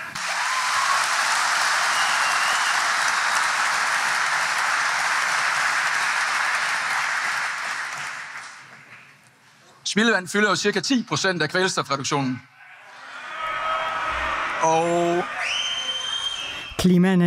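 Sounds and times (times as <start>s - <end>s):
audience applauding and cheering at a public meeting on nitrogen emissions: 0.2s - 9.0s, 12.8s - 16.7s
speech: 10.0s - 12.6s, 14.7s - 15.4s, 16.8s - 17.2s.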